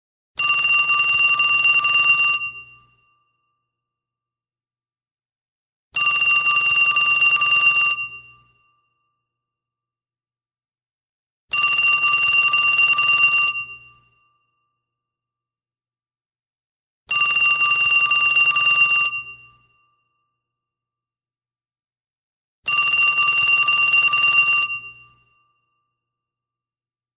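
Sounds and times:
old phone ring tone: 0.4s - 2.8s, 6.0s - 8.3s, 11.6s - 14.1s, 17.1s - 19.7s, 22.7s - 25.3s.

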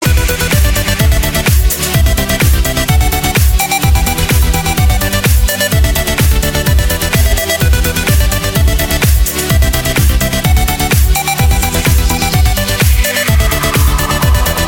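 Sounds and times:
electro beat: 0.0s - 14.6s.

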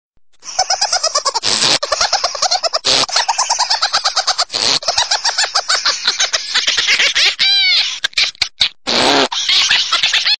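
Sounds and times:
army group laughing: 0.4s - 10.3s.

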